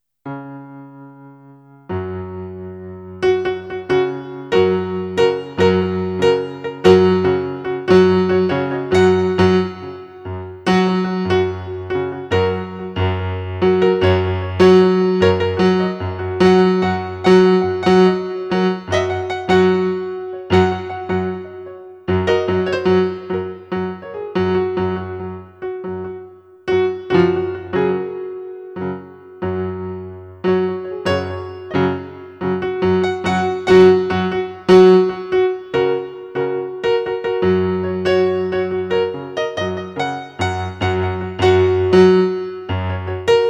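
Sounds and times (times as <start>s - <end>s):
lively piano piece: 0.2s - 43.4s.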